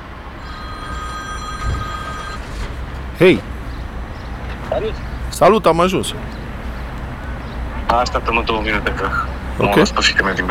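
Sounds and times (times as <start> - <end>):
phone ringing with a high electronic tone: 0.4 - 2.7
speech: 3.2 - 3.5, 4.7 - 6.4, 7.9 - 10.4.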